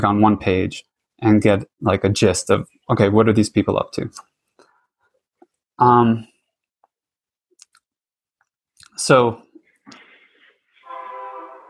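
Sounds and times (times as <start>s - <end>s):
speech: 0.0s - 4.3s, 5.8s - 6.3s, 9.0s - 10.0s
loud sustained train horn blast with several steady tones: 10.8s - 11.6s.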